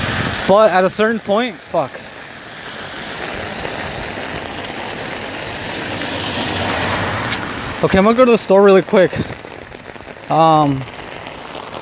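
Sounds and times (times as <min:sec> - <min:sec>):
heavy rain falling: 0:00.0 - 0:11.8
speech: 0:00.5 - 0:02.0, 0:07.8 - 0:09.4, 0:10.3 - 0:10.9.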